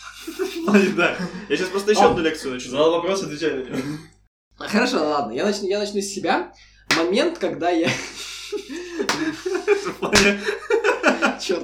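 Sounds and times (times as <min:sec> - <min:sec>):
laughter: 0:00.2 - 0:02.6, 0:07.8 - 0:11.6
speech: 0:00.2 - 0:10.7, 0:11.4 - 0:11.6
sharp claps or slaps: 0:06.9 - 0:07.1, 0:09.1 - 0:09.5, 0:10.1 - 0:10.4.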